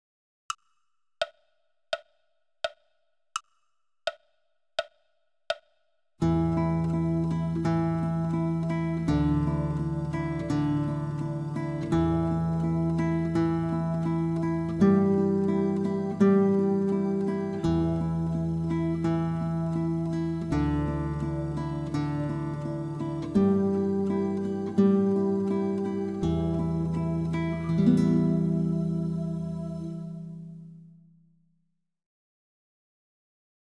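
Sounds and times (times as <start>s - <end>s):
mini tremolo: 6.3s - 30.8s.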